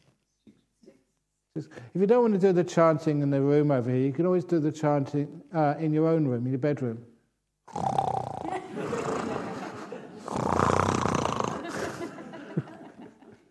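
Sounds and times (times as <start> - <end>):
speech: 1.6 - 7.1
person imitating loud rasping snoring: 7.7 - 9.6, 10.2 - 12.0
laughter: 8.4 - 10.4, 11.5 - 13.4.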